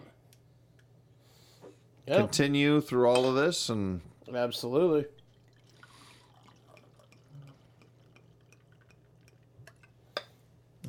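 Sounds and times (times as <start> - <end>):
low steady hum: 0.0 - 10.8
speech: 2.1 - 5.2
drink pouring from a bottle: 5.2 - 10.0.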